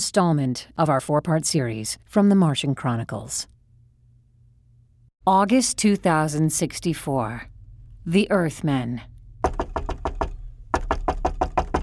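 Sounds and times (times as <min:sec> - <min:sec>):
speech: 0:00.0 - 0:03.5, 0:05.2 - 0:09.1
loud insistent knocking on a door: 0:09.4 - 0:11.8.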